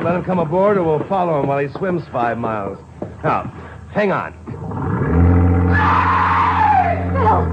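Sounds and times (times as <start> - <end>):
speech: 0.0 - 4.8
cabin cruiser boat engine throttle opening up: 4.5 - 7.5
harsh high wailing sound: 5.4 - 7.5.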